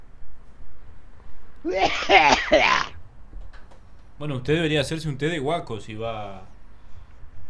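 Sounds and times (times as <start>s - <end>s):
faint noise: 0.0s - 7.4s
speech: 1.6s - 2.9s, 4.2s - 6.5s
laughter: 1.7s - 2.8s
harsh throaty cough: 1.7s - 3.0s.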